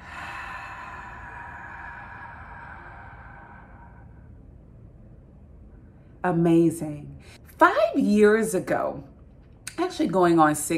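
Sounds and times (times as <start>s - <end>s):
person breathing during a guided breathing exercise: 0.0s - 4.7s
speech: 6.2s - 9.1s, 9.9s - 10.7s.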